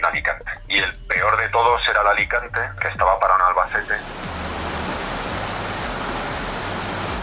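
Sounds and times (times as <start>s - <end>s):
speech: 0.1s - 4.1s
freezing rain falling in the province of Albacete: 3.6s - 7.2s.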